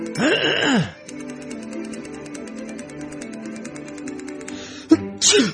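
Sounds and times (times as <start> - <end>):
person sneezing: 0.2 - 1.0, 4.9 - 5.5.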